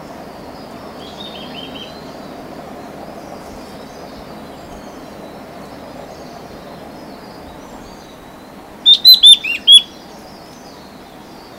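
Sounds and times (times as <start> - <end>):
faint steady background hiss: 0.0 - 11.5
mountain wren-babbler whistled calls at Bukit Ular on Mount Kinabalu: 8.0 - 10.0.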